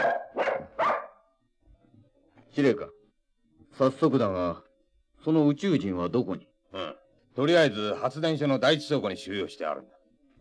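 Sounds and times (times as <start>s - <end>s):
dog barking: 0.0s - 1.2s
speech: 2.6s - 3.0s, 3.7s - 4.6s, 5.2s - 10.0s.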